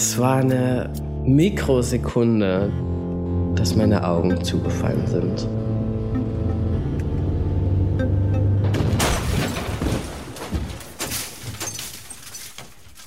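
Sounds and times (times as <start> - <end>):
speech: 0.1 - 3.0, 3.6 - 5.6
car engine droning: 3.6 - 8.8
car crashing into a highway guardrail: 8.6 - 13.0
debris rattling: 8.7 - 13.0.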